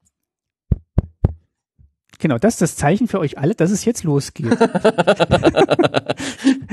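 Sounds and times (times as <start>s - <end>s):
fingers tapping on a microphone: 0.7s - 2.0s
speech: 2.2s - 6.7s
laughter: 4.4s - 6.7s.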